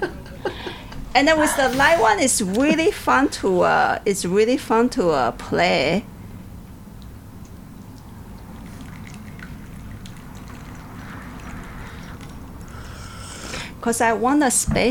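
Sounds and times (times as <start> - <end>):
constant low rumble: 1.0 - 4.1
speech: 1.2 - 6.1, 13.8 - 14.8
water slowly poured onto tea leaves: 6.9 - 12.8.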